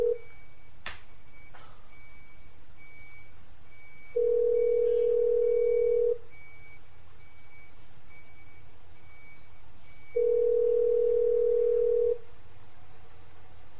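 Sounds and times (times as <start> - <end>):
phone ringback tone on an outgoing call: 0.0 - 0.3, 3.9 - 6.2, 10.0 - 12.2.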